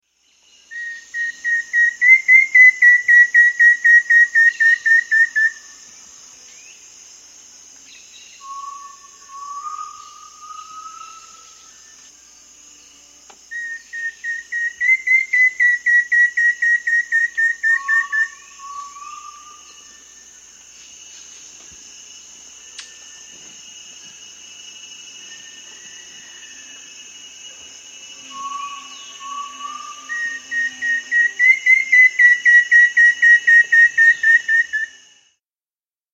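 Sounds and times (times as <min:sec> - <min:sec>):
Rufous-fronted antthrush calling in South America: 0:00.7 - 0:05.8, 0:08.4 - 0:12.0, 0:13.5 - 0:20.2, 0:28.1 - 0:35.0.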